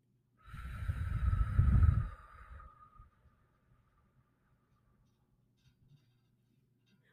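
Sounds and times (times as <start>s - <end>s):
deep breath drawn through the nose during a guided breathing exercise: 0.4s - 3.4s.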